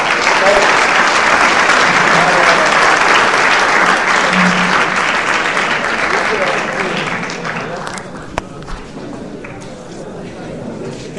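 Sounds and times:
audience applause after a blessing at a religious gathering: 0.0s - 8.5s.

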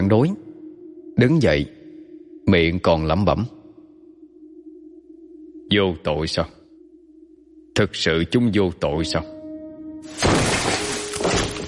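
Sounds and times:
speech: 0.1s - 0.4s, 1.2s - 1.8s, 2.5s - 3.6s, 5.7s - 6.6s, 7.8s - 9.4s, 10.0s - 10.5s
wooden ceiling beam crashing down: 10.1s - 11.6s.

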